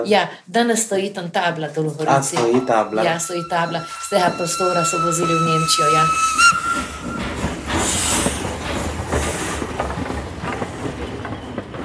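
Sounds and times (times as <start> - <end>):
speech: 0.0 - 6.9
steam train engine and rolling cars rumbling: 1.9 - 11.8
steam train whistle: 2.0 - 9.8
steam train bursts of steam hiss: 2.6 - 11.3.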